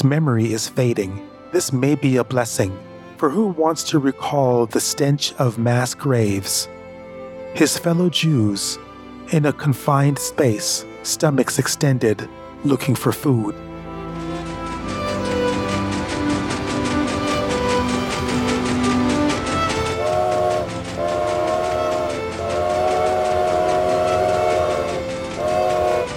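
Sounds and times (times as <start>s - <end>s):
speech: 0.0s - 6.8s, 7.6s - 13.7s
train rolling along the rails with rhythmic clatter: 13.9s - 26.1s.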